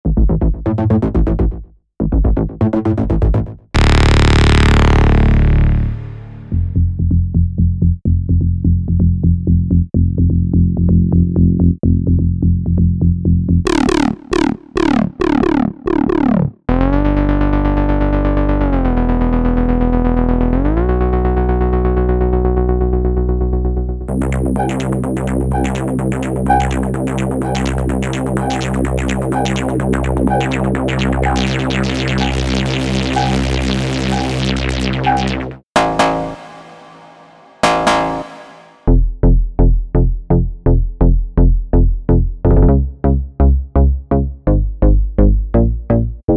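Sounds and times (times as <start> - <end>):
synthesizer bass presets: 0.1 - 46.3.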